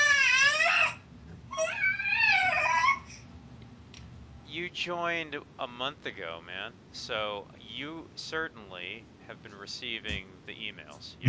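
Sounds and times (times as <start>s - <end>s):
young daughter crying and fussing: 0.0s - 3.2s
speech: 4.8s - 11.2s.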